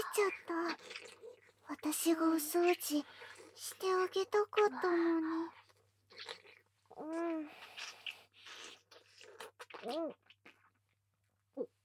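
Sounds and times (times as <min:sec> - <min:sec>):
speech: 0:00.1 - 0:05.6, 0:07.0 - 0:08.0, 0:09.8 - 0:10.2
person eating ramen noodles: 0:00.6 - 0:01.5, 0:05.6 - 0:10.9.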